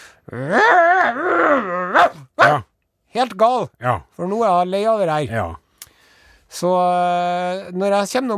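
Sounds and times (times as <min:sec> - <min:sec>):
person imitating growl of annoyed mother dog: 0:00.2 - 0:02.7
speech: 0:00.3 - 0:02.2, 0:03.3 - 0:05.6, 0:06.5 - 0:08.3.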